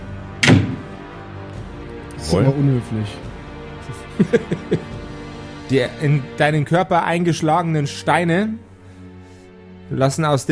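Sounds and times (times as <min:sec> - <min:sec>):
door slamming shut: 0:00.4 - 0:01.0
speech: 0:02.2 - 0:03.3, 0:04.2 - 0:05.0, 0:05.7 - 0:08.7, 0:09.9 - 0:10.5
laughter: 0:03.8 - 0:05.0.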